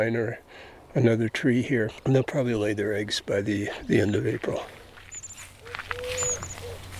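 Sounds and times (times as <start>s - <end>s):
speech: 0.0s - 4.8s
faint outdoor rustling: 3.5s - 6.9s
pair of Eurasian collared doves cooing in a spring courtship duet: 3.7s - 6.9s
thin high chirps from other birds: 5.1s - 6.7s.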